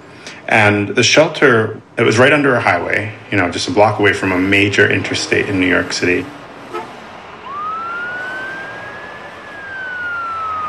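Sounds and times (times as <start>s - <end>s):
city traffic noise: 0.0s - 10.6s
speech: 0.5s - 6.4s
emergency siren wailing: 5.3s - 10.6s.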